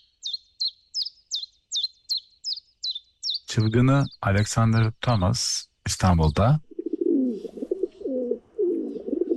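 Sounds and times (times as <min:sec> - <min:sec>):
speech: 0:03.5 - 0:06.7
stock dove cooing: 0:06.7 - 0:09.3.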